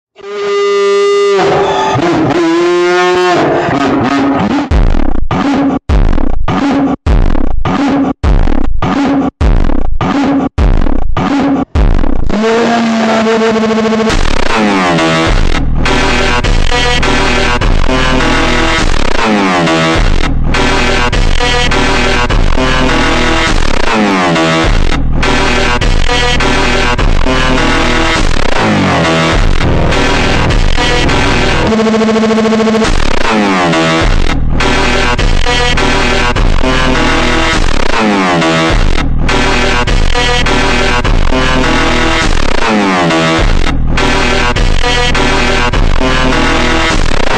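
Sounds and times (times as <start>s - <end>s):
Korean funk music ultra slowed with reverb: 0.4s - 47.3s.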